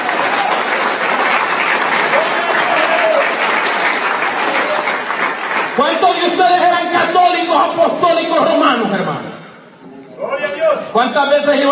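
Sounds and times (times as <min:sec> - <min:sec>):
congregation applauding at an evangelical church service: 0:00.0 - 0:07.5
speech: 0:05.8 - 0:09.4, 0:10.7 - 0:11.7.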